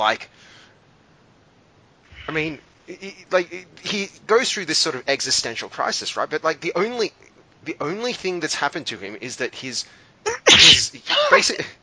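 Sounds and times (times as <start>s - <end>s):
speech: 0.0s - 0.6s, 2.3s - 11.8s
sneeze: 10.3s - 11.4s.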